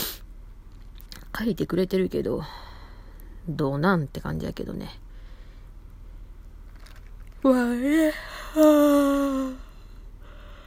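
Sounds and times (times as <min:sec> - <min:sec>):
speech: 0:01.4 - 0:02.7, 0:03.4 - 0:05.0, 0:07.4 - 0:09.6
yawn: 0:07.9 - 0:09.9.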